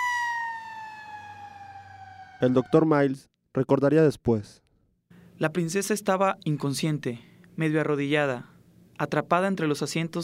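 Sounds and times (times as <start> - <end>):
fire truck siren at a road tunnel after a car crash: 0.0 - 3.1
speech: 2.4 - 4.6, 5.4 - 10.2.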